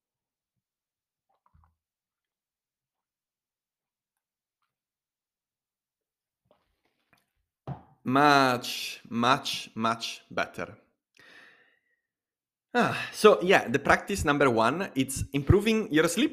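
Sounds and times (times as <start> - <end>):
person sipping water: 1.3 - 2.4
speech: 8.1 - 10.8, 12.7 - 16.3.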